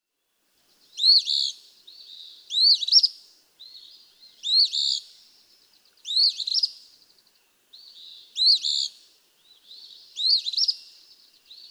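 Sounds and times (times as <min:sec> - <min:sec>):
Eastern Phoebe song: 0:00.8 - 0:11.6
speech: 0:02.7 - 0:03.0.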